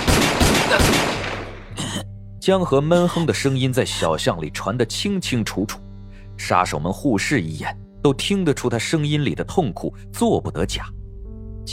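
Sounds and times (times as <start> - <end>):
gunshots in a narrow alley: 0.0 - 1.7
speech: 2.4 - 11.0.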